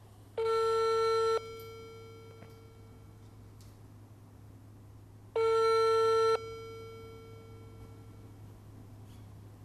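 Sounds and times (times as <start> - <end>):
faint hum on a telephone line: 0.0 - 9.6
telephone ringback tones during a call to a court: 0.4 - 3.2, 5.4 - 8.3.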